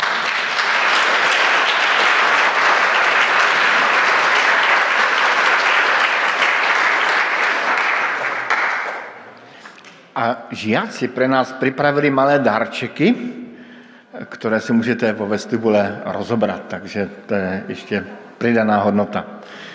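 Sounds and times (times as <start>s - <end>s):
sizable audience applauding at a church service: 0.0s - 9.9s
speech: 10.5s - 13.4s, 14.2s - 19.6s.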